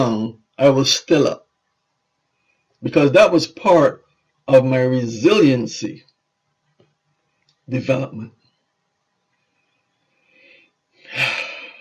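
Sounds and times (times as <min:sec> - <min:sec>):
speech: 0:00.0 - 0:01.4, 0:02.8 - 0:06.1, 0:07.7 - 0:08.4
labored emotional breathing into microphone: 0:10.2 - 0:11.7.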